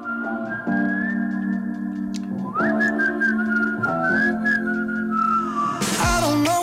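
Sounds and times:
steady backing music: 0.0s - 6.6s
whistled melody at a pop song's intro: 0.0s - 6.6s.

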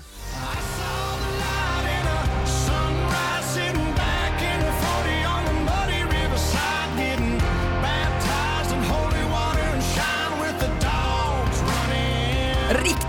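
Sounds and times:
country song with sung lead vocal and full band: 0.0s - 13.0s
twangy guitars: 0.5s - 12.7s
driving beat: 0.5s - 13.0s.

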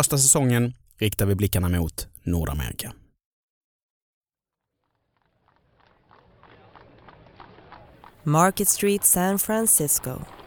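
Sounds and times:
speech: 0.0s - 3.0s, 8.2s - 10.4s
horse hooves clip-clopping on street: 4.8s - 10.4s
traffic rumbling: 5.0s - 10.4s.

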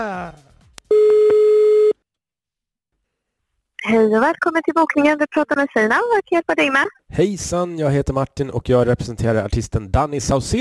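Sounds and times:
speech: 0.0s - 0.5s, 3.9s - 10.6s
telephone ringing tone on a call to a hotel in Norrköping: 0.9s - 2.0s.

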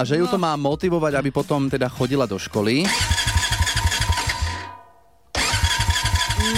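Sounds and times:
speech: 0.0s - 3.3s
car engine cranking but failing to start: 2.9s - 4.7s, 5.3s - 6.5s.

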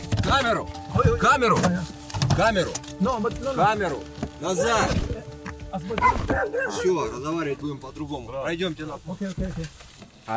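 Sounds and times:
speech: 0.3s - 5.1s, 5.7s - 10.3s
dogs barking and yelping in overlapping bursts: 4.4s - 5.2s, 6.0s - 7.2s.

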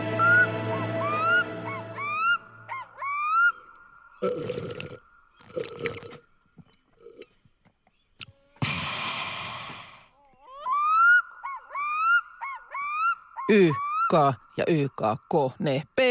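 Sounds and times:
black-throated loon calling: 0.1s - 4.6s, 10.2s - 14.6s
speech: 13.6s - 16.0s.

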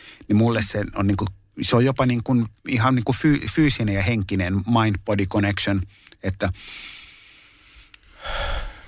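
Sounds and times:
speech: 0.2s - 7.0s
slow deliberate deep breathing: 5.9s - 8.8s.

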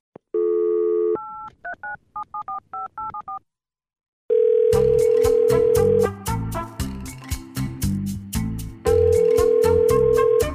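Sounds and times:
telephone dial tone: 0.4s - 1.5s, 4.3s - 6.0s, 8.9s - 10.4s
busy rhythmic music: 4.8s - 10.5s.

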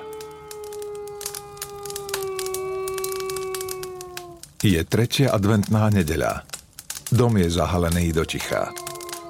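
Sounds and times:
dogs howling in the distance outside a window: 0.0s - 4.6s, 8.0s - 9.2s
fire dying down crackling in a fireplace: 0.0s - 9.2s
speech: 4.6s - 6.5s, 7.1s - 8.8s.

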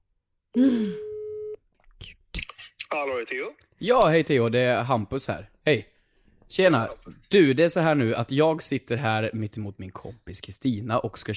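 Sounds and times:
speech: 0.5s - 1.0s, 2.9s - 5.9s, 6.5s - 11.3s
phone ringback tone through a phone line: 1.0s - 1.6s.

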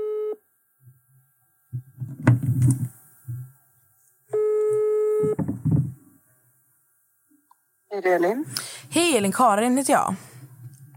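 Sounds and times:
telephone ringback tone: 0.0s - 0.4s, 4.4s - 5.4s
low thumps: 1.7s - 3.5s, 5.2s - 6.1s
speech: 8.0s - 10.3s.

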